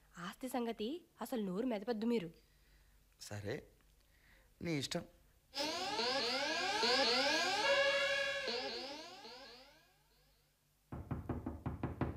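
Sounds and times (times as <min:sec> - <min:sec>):
speech: 0:00.4 - 0:02.5, 0:03.2 - 0:03.8, 0:04.6 - 0:07.4
sweeping tones: 0:05.6 - 0:10.4
knocking on a door: 0:10.9 - 0:12.1.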